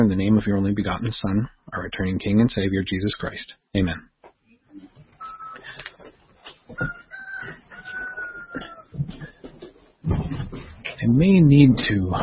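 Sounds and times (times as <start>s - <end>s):
speech: 0.0s - 4.1s, 6.7s - 7.0s, 11.1s - 12.2s
pet rooster crowing through an open window: 5.2s - 5.7s, 6.7s - 9.0s
household clatter and thumps: 9.0s - 11.0s.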